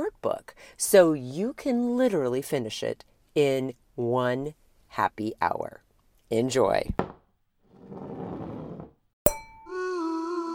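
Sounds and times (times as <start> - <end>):
speech: 0.3 - 7.0
glasses clinking in a toast: 9.3 - 10.0.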